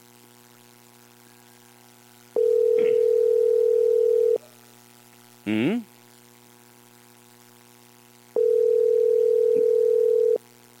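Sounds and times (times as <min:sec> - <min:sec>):
telephone line busy signal beeps: 0:02.4 - 0:04.4, 0:08.4 - 0:10.4.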